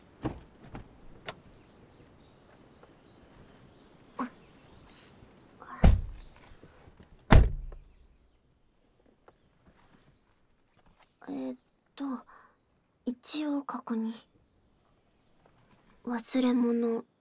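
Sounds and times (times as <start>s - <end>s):
car door shutting with a short ringing decay: 0.2s - 1.4s, 5.8s - 6.4s, 7.3s - 7.9s
speech: 13.4s - 14.3s, 16.1s - 17.1s.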